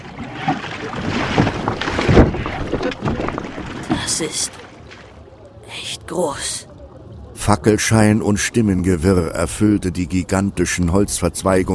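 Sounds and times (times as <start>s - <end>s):
oars rowing a boat through water: 0.0s - 5.8s
open water noise: 0.0s - 11.7s
wind: 0.0s - 11.7s
speech: 4.2s - 4.6s, 6.1s - 6.6s, 7.5s - 11.7s.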